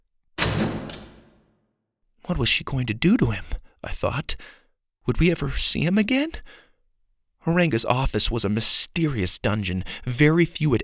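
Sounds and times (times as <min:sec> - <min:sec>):
office door slamming shut: 0:00.4 - 0:01.4
speech: 0:02.3 - 0:06.6, 0:07.4 - 0:10.8.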